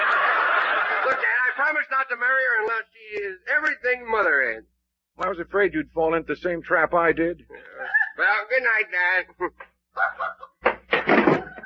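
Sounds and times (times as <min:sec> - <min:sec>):
laughter: 0:00.0 - 0:03.4, 0:07.5 - 0:11.6
speech: 0:01.1 - 0:10.5
door knocks and rattles as it is tried: 0:10.6 - 0:11.6.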